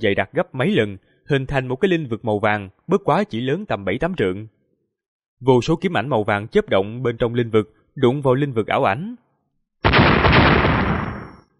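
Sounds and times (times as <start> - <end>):
speech: 0.0 - 4.6, 5.4 - 9.2
loud explosion sound effect: 9.8 - 11.5.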